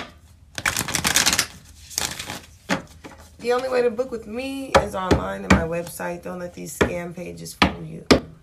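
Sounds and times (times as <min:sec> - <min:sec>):
tarot cards being shuffled and drawn: 0:00.5 - 0:03.8
speech: 0:03.4 - 0:08.2.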